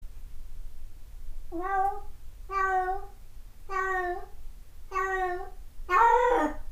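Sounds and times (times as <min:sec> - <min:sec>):
cat meowing: 0:01.5 - 0:04.3, 0:04.9 - 0:06.4.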